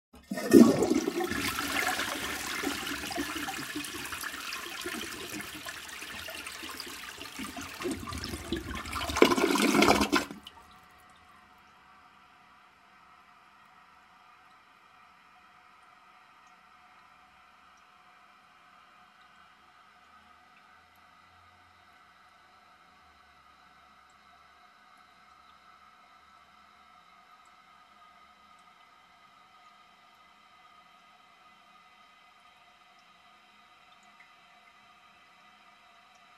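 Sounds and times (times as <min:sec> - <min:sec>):
toilet bowl flushing: 0:00.2 - 0:10.7.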